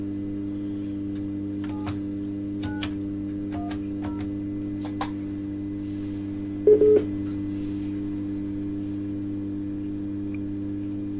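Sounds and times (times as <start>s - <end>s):
steady low telephone line hum: 0.0s - 11.1s
short electronic beeps from a telephone call being dialed: 6.7s - 7.1s.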